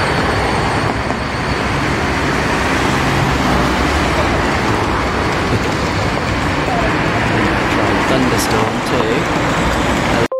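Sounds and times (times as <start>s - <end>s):
cars and heavier vehicles passing: 0.0s - 10.3s
dense city traffic roar: 0.0s - 10.3s
indistinct murmur: 0.1s - 10.3s.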